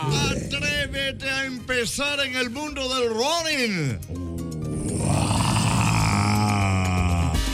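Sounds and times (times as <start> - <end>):
man imitating a lion's roar: 0.0 - 1.2, 4.1 - 7.5
speech: 1.0 - 4.3.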